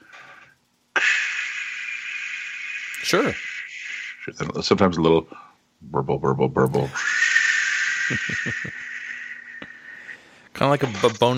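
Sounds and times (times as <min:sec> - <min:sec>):
person imitating CPAP machine airflow hiss with their mouth: 0:00.0 - 0:04.4, 0:06.8 - 0:11.2
speech: 0:03.0 - 0:03.5, 0:04.2 - 0:07.1, 0:08.1 - 0:08.9, 0:10.6 - 0:11.3
laughter: 0:07.8 - 0:09.4.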